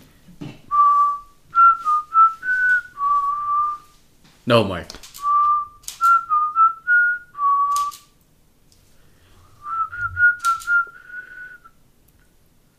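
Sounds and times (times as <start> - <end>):
person whistling a bright pop song melody: 0.7 - 3.9, 5.2 - 8.1, 9.6 - 11.8
speech: 4.5 - 5.0.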